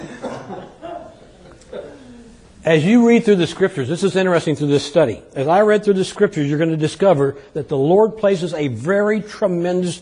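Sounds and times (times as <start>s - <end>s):
audience members coughing: 0.0s - 2.4s
speech: 2.6s - 10.0s.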